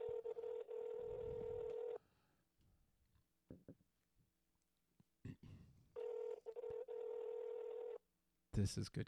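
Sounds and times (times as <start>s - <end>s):
telephone ringback tone: 0.0s - 2.0s, 6.0s - 8.0s.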